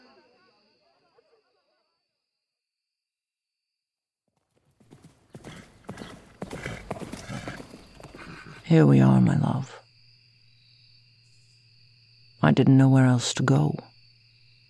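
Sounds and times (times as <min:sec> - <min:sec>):
horse hooves clip-clopping: 0:04.4 - 0:08.6
faint buzzing ambience: 0:04.6 - 0:14.6
speech: 0:08.7 - 0:09.8, 0:12.4 - 0:13.9.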